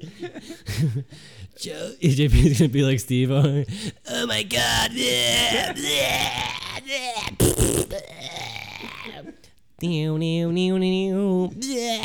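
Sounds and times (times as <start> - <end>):
speech: 0.0 - 8.2, 9.8 - 12.0
person talking in a strained groaning tone: 4.1 - 9.4, 11.6 - 12.0
person burping into the microphone: 4.6 - 9.4, 11.6 - 12.0.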